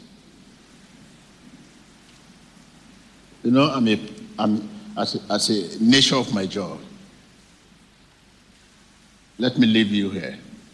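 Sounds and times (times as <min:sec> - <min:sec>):
steady rain downpour: 0:00.0 - 0:10.7
speech: 0:03.4 - 0:06.9, 0:09.4 - 0:10.5.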